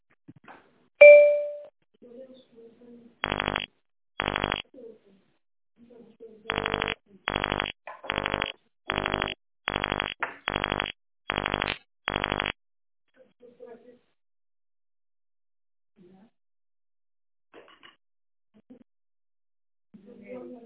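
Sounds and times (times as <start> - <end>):
electronic voice menu prompt beep: 1.0 - 1.7, 4.2 - 4.6, 6.5 - 12.5.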